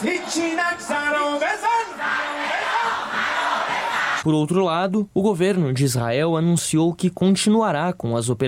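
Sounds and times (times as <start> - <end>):
speech: 0.0 - 2.4, 4.2 - 8.4
roar of many protesters yelling together: 0.0 - 4.2
large protest crowd in Tehran chanting slogans: 1.5 - 4.2.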